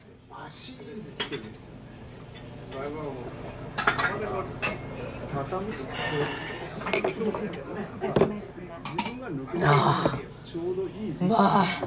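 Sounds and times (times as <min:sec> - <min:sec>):
steady hum of a busy restaurant: 0:00.0 - 0:11.8
speech: 0:02.7 - 0:11.8
glasses clinking in a toast over after-work drinks: 0:03.7 - 0:04.9, 0:06.8 - 0:07.6.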